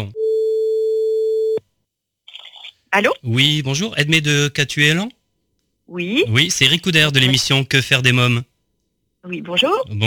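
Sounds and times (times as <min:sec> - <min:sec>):
speech: 0:00.0 - 0:00.2, 0:02.9 - 0:05.2, 0:05.9 - 0:08.5, 0:09.2 - 0:10.0
telephone line tone while calling a guest: 0:00.0 - 0:01.6.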